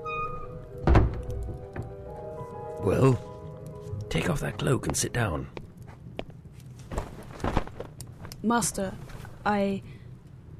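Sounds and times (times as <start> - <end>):
heavy door thudding shut: 0.8 - 1.9
speech: 2.8 - 3.3, 4.1 - 5.6, 8.4 - 9.9.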